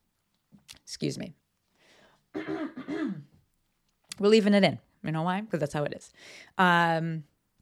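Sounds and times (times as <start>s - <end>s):
speech: 0.9s - 1.4s, 4.2s - 7.3s
person clearing throat with rough guttural bursts: 2.4s - 3.4s.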